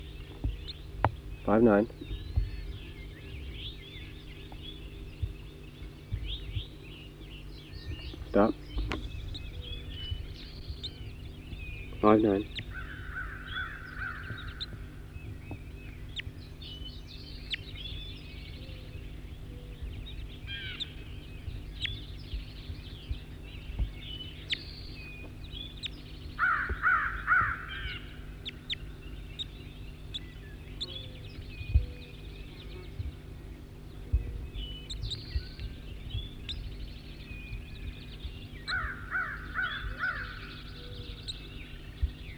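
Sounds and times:
steady low hum: 0:00.0 - 0:42.3
speech: 0:01.5 - 0:02.1, 0:08.4 - 0:08.6, 0:12.1 - 0:12.6
bird caught in a net giving harsh crow-like caws: 0:12.4 - 0:15.0, 0:26.4 - 0:29.0, 0:38.7 - 0:41.5.

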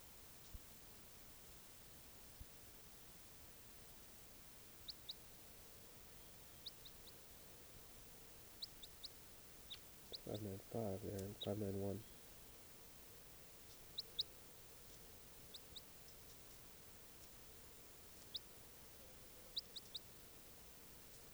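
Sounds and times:
steady hiss of noise: 0:00.0 - 0:21.3
faint high bird chirps: 0:04.8 - 0:21.3
speech: 0:10.3 - 0:12.2.

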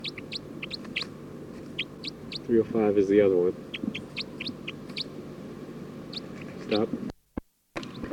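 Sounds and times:
bird chirping: 0:00.0 - 0:02.7, 0:03.6 - 0:05.2, 0:06.1 - 0:06.9
low steady hum: 0:00.0 - 0:08.1
speech: 0:02.5 - 0:04.0, 0:06.7 - 0:07.1.

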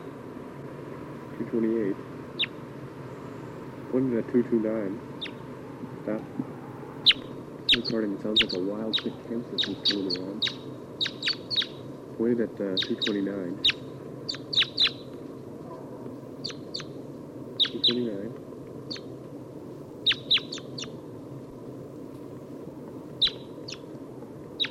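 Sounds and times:
steady low noise: 0:00.0 - 0:24.6
speech: 0:01.4 - 0:02.2, 0:03.9 - 0:05.1, 0:06.0 - 0:06.6, 0:07.8 - 0:10.6, 0:12.2 - 0:13.7
crossbill giving type 2 calls: 0:02.4 - 0:02.6, 0:07.0 - 0:11.8, 0:12.7 - 0:15.1, 0:16.4 - 0:16.9, 0:17.6 - 0:18.1, 0:18.9 - 0:19.1, 0:20.0 - 0:21.0, 0:23.2 - 0:23.8.

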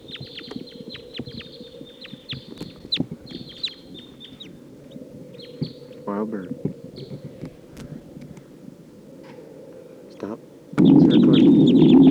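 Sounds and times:
wild birds squawking and chirping while taking off and circling: 0:00.0 - 0:12.0
speech: 0:06.1 - 0:06.7
rumbling busy background: 0:10.8 - 0:12.0.

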